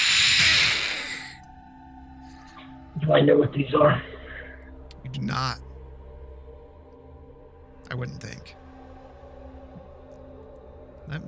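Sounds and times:
voice imitating hissing creatures: 0.0s - 1.4s
speech: 3.0s - 4.1s, 5.1s - 5.6s, 7.9s - 8.6s, 11.1s - 11.2s.

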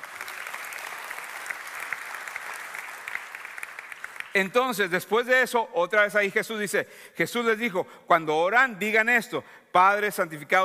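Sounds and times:
audience applauding: 0.0s - 4.8s
speech: 4.4s - 10.6s.

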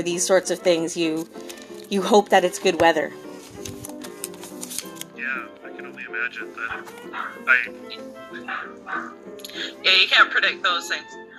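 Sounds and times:
speech: 0.0s - 3.2s, 6.1s - 11.3s
dogs barking and yipping excitedly: 6.7s - 7.5s, 8.4s - 9.3s.

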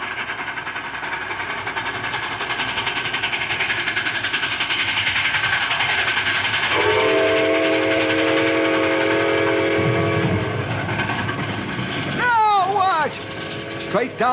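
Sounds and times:
approaching steam train rumbling and chugging: 0.0s - 14.3s
steam train whistle blast: 6.7s - 10.7s
speech: 14.0s - 14.3s.

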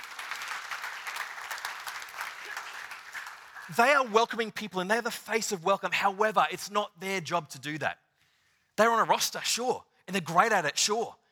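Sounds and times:
applause for a volunteer welcome team at a gathering: 0.0s - 4.5s
speech: 3.7s - 8.0s, 8.8s - 11.2s.

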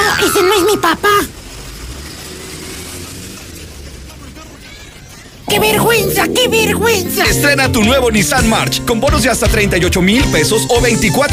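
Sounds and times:
speech: 0.3s - 1.4s, 5.5s - 11.3s
sputtering broken-down car engine idling at a supermarket entrance: 0.8s - 5.5s.

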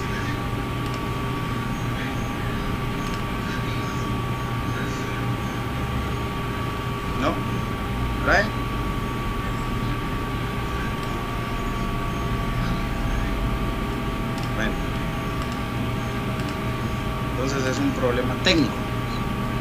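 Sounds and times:
washing machine running: 0.0s - 19.5s.

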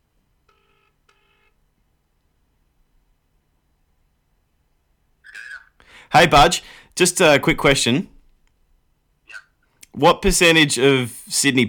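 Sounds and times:
hiss: 0.0s - 11.6s
electronic telephone dialing tones: 0.5s - 1.6s
speech: 6.1s - 8.2s, 10.0s - 11.6s.

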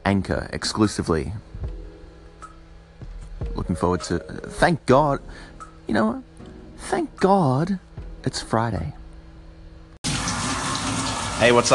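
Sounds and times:
speech: 0.1s - 1.5s, 3.6s - 9.0s, 11.4s - 11.7s
shower water running: 10.0s - 11.7s.

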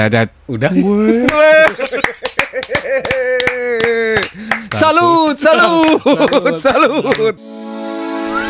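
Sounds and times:
speech: 0.0s - 7.7s
laughter: 1.1s - 4.3s, 5.7s - 7.4s
sharp hand claps: 1.3s - 4.9s, 5.8s - 6.5s, 7.1s - 7.3s.

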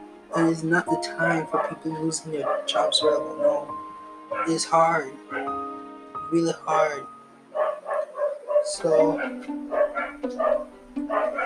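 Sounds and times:
dogs barking: 0.3s - 0.6s, 1.3s - 5.6s, 7.5s - 11.4s
speech: 0.3s - 5.7s, 6.3s - 7.1s, 8.7s - 11.4s
higher dog yips: 2.4s - 4.6s, 7.6s - 11.4s.

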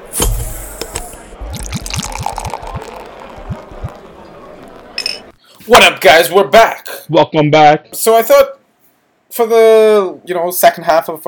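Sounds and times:
water and beer pouring into glasses: 1.4s - 4.1s
speech: 5.7s - 8.6s, 9.3s - 11.2s.

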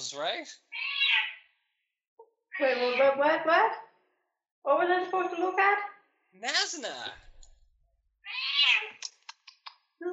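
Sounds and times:
speech: 0.0s - 0.9s, 2.6s - 3.9s, 4.6s - 7.2s
cat giving a loud drawn-out meow: 0.7s - 1.4s, 2.6s - 3.0s, 8.2s - 9.0s.

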